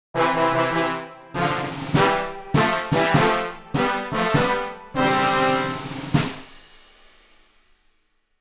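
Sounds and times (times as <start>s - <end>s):
cartoon ascending success victory fanfare: 0.2s - 6.4s.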